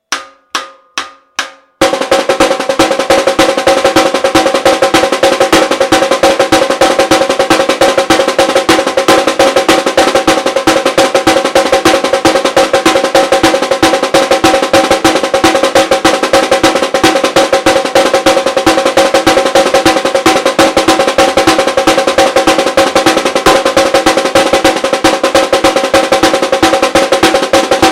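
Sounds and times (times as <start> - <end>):
caixa snare drums playing batucada: 0.0 - 27.9.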